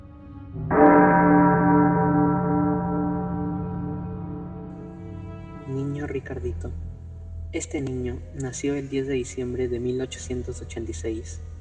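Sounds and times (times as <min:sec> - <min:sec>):
church bell ringing: 0:00.7 - 0:07.4
speech: 0:06.2 - 0:06.9, 0:07.5 - 0:11.5.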